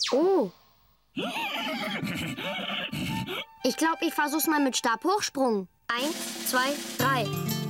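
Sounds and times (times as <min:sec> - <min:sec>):
speech: 0:00.1 - 0:00.6, 0:01.2 - 0:02.6, 0:03.6 - 0:07.5
horse neighing as its tail is pulled: 0:01.2 - 0:03.4.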